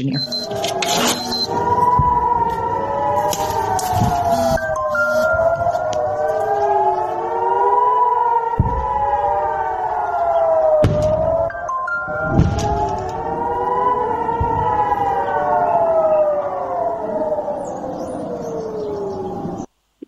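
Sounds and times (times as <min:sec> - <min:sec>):
speech: 0:00.0 - 0:01.6
several civil defense air raid sirens wailing: 0:00.0 - 0:19.7
dull thumps: 0:01.9 - 0:02.5, 0:08.6 - 0:09.1.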